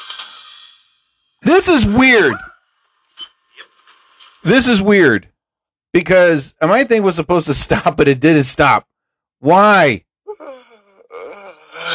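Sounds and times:
speech: 0:01.5 - 0:02.5, 0:04.4 - 0:05.3, 0:05.9 - 0:10.0
person yawning: 0:10.3 - 0:11.9.

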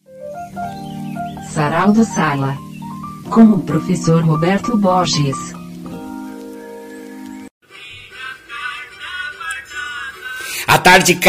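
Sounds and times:
steady tonal music: 0:00.3 - 0:07.5
dense hissing patter of rain: 0:01.1 - 0:07.5
speech: 0:01.6 - 0:02.6, 0:03.3 - 0:05.6, 0:10.8 - 0:11.2.

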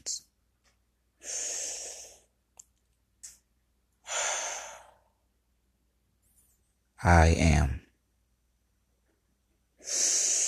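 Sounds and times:
speech: 0:00.0 - 0:00.3, 0:07.0 - 0:07.8
deep slow breathing during a guided breathing exercise: 0:01.2 - 0:02.3, 0:04.0 - 0:05.2, 0:09.8 - 0:10.4
soft clicks: 0:02.5 - 0:03.5.

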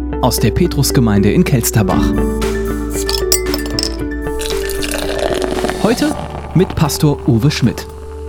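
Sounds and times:
speech: 0:00.2 - 0:03.2, 0:05.9 - 0:07.9
person slurping a hot drink: 0:04.4 - 0:07.3.

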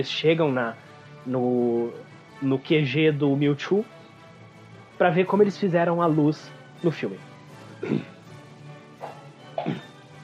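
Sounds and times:
speech: 0:00.0 - 0:04.0, 0:05.0 - 0:08.1
person clearing throat in gruff bursts: 0:07.8 - 0:08.2, 0:09.0 - 0:10.2.

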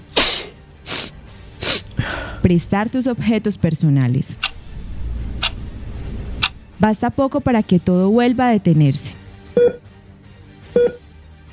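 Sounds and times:
person sneezing: 0:00.0 - 0:02.2
snorting exhale: 0:00.1 - 0:02.4
speech: 0:02.4 - 0:04.5, 0:06.8 - 0:09.8.

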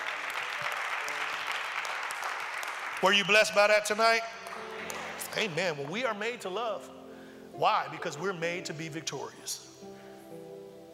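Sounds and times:
audience applause after a prayer: 0:00.0 - 0:05.6
speech: 0:03.0 - 0:04.4, 0:05.3 - 0:07.0, 0:07.6 - 0:09.7.

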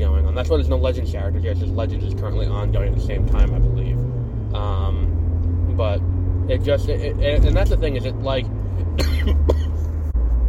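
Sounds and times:
steady low rumbling hum: 0:00.0 - 0:10.4
speech: 0:00.4 - 0:05.2, 0:05.8 - 0:09.6
sharp cough: 0:08.9 - 0:09.8.

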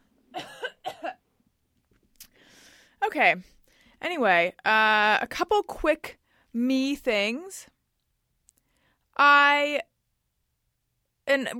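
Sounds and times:
person coughing away from the microphone after swallowing wrong: 0:00.3 - 0:01.2
speech: 0:03.1 - 0:07.7, 0:09.2 - 0:09.9, 0:11.3 - 0:11.5.

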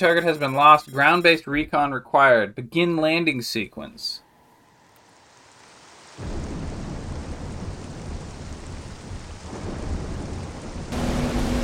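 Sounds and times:
speech: 0:00.0 - 0:04.2, 0:06.2 - 0:06.5
heavy rain pouring in a thunderstorm: 0:04.5 - 0:11.6
deep rumble of thunder: 0:06.2 - 0:11.6.

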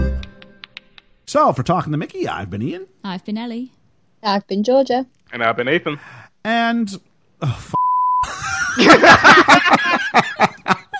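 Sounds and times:
speech: 0:01.3 - 0:07.8
steady censor-style beep: 0:07.8 - 0:08.3
several people snickering and chuckling: 0:08.2 - 0:10.9.

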